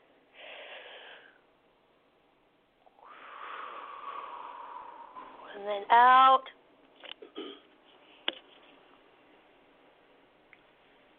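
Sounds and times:
person breathing in slowly during a guided breathing exercise: 0:00.3 - 0:01.4, 0:02.9 - 0:05.5
speech: 0:05.6 - 0:06.6.

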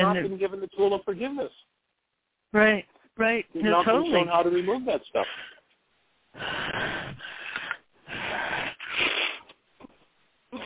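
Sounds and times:
speech: 0:00.0 - 0:01.8, 0:02.5 - 0:05.5, 0:06.3 - 0:07.2
slow deep breaths: 0:06.3 - 0:09.5.

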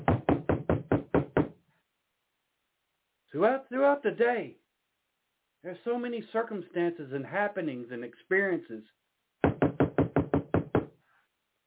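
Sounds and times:
knocking on a door: 0:00.0 - 0:01.6, 0:09.4 - 0:11.0
speech: 0:03.4 - 0:04.6, 0:05.6 - 0:09.0.

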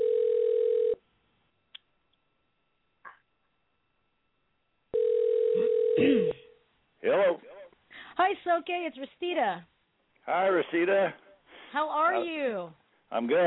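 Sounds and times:
telephone dial tone while dialing a call: 0:00.0 - 0:01.0, 0:05.0 - 0:06.0
speech: 0:08.2 - 0:09.7, 0:10.3 - 0:13.4.

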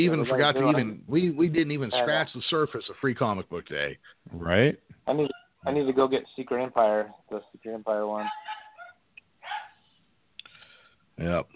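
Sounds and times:
speech: 0:00.0 - 0:08.6, 0:11.2 - 0:11.5
dogs barking with short yips: 0:08.2 - 0:09.8.

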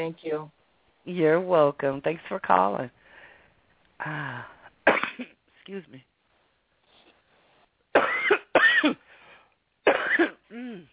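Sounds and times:
speech: 0:00.0 - 0:03.0, 0:04.0 - 0:06.1, 0:08.8 - 0:09.0, 0:09.9 - 0:10.9
harsh coughs: 0:04.8 - 0:05.4, 0:07.9 - 0:09.1, 0:09.8 - 0:10.8.

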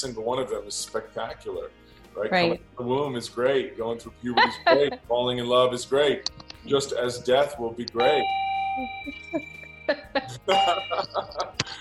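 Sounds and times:
speech: 0:00.0 - 0:11.7
laughter: 0:04.2 - 0:05.0, 0:09.3 - 0:11.7
bell ringing: 0:08.0 - 0:11.5.

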